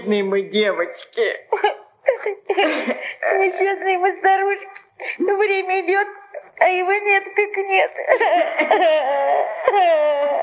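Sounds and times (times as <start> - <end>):
speech: 0.1 - 10.4
elderly women crying and sobbing: 1.5 - 4.3, 4.9 - 10.4
loud sustained wailing cry with a wavering pitch: 8.8 - 10.4.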